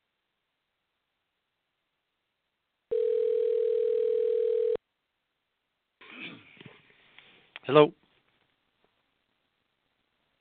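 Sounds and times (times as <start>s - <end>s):
telephone line ringback tone while placing a call: 2.9s - 4.8s
speech: 7.7s - 8.0s.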